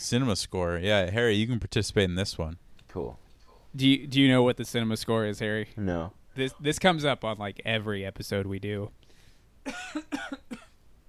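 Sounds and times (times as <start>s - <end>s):
speech: 0.0s - 9.0s, 9.6s - 10.6s
harsh coughing: 9.6s - 10.8s.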